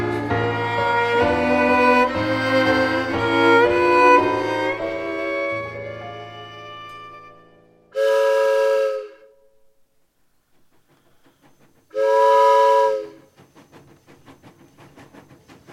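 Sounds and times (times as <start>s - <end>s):
rhythmic clatter of rolling railcars on the track: 0.0s - 7.4s, 10.0s - 15.7s
train horn blasts on a wartime train heading east toward the front: 0.0s - 9.6s, 11.9s - 13.3s.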